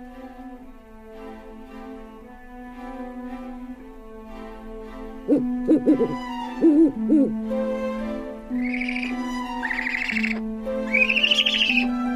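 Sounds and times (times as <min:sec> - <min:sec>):
owl hooting: 0:05.3 - 0:07.4, 0:08.5 - 0:12.0
brighter whistling notes: 0:08.6 - 0:11.9.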